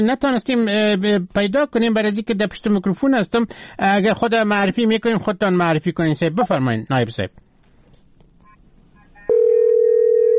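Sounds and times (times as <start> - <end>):
speech: 0.0 - 7.4
telephone line ringing with a steady electronic tone: 9.3 - 10.3.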